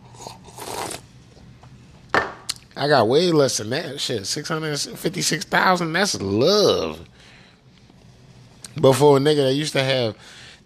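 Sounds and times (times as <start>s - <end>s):
slurping sip of a drink: 0.0s - 1.1s
speech: 2.8s - 7.3s, 8.8s - 10.4s.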